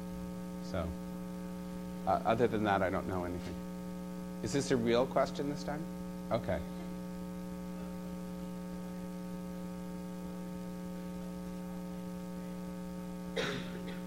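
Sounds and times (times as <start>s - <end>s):
electrical hum: 0.0s - 14.0s
speech: 0.7s - 1.1s, 2.0s - 3.7s, 4.4s - 6.8s
person coughing: 13.3s - 14.0s.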